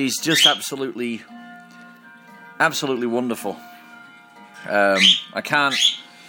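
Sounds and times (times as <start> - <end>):
speech: 0.0 - 1.5, 2.6 - 3.7, 4.6 - 6.0
grey parrot raspy speech-like chatter with shrill whistled tones: 0.2 - 0.6, 4.9 - 6.1.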